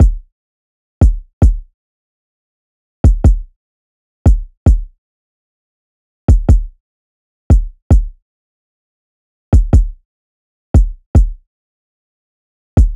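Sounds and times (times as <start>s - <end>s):
kick drum loop at 148 BPM: 0.0s - 0.2s, 1.0s - 1.6s, 3.1s - 3.5s, 4.3s - 4.9s, 6.3s - 6.7s, 7.5s - 8.2s, 9.6s - 10.0s, 10.8s - 11.4s.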